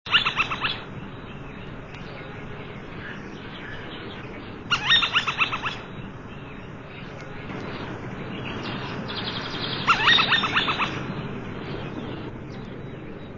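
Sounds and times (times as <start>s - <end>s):
goshawk: 0.1s - 0.9s, 3.0s - 6.0s, 7.5s - 12.3s.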